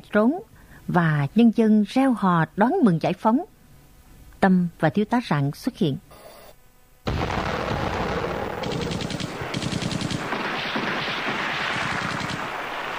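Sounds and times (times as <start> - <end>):
speech: 0.1 - 3.5, 4.4 - 6.0
booming explosions during a wartime assault on a coastal town: 7.1 - 12.9
rapid machine-gun fire during a wartime assault on a coastal town: 7.1 - 12.9.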